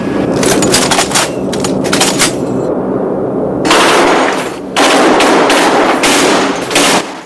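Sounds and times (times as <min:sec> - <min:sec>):
B-17 bomber engine drone in flight: 0:00.0 - 0:07.2
bomber turret machine guns test-firing in flight: 0:03.7 - 0:07.2.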